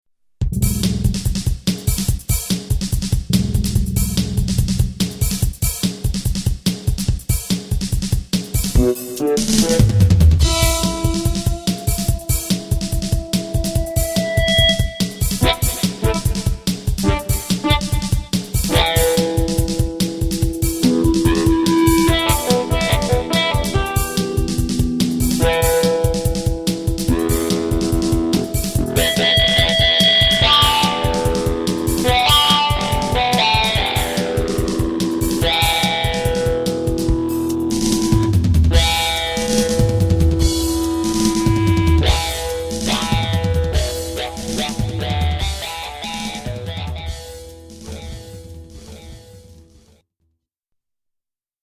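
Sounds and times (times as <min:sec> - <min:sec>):
drums: 0:00.4 - 0:50.0
guitar: 0:08.8 - 0:49.7.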